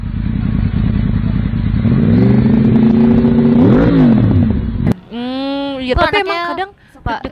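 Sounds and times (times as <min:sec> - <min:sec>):
loud heavy big motorcycle engine revving: 0:00.0 - 0:05.0
sharp crack of motorcycle exhaust: 0:00.0 - 0:05.1
speech: 0:05.9 - 0:07.3.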